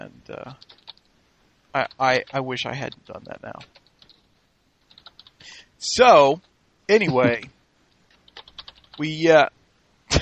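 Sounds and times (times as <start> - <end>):
speech: 0.0 - 0.8, 1.7 - 3.8, 5.8 - 7.6, 9.0 - 9.6
light keystrokes on a computer keyboard: 0.6 - 1.1, 1.8 - 4.3, 4.9 - 5.4, 8.1 - 9.0.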